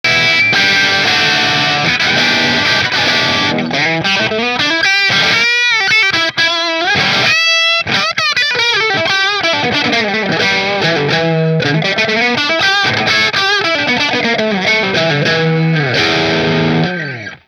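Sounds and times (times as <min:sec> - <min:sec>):
guitars: 0:00.0 - 0:17.4.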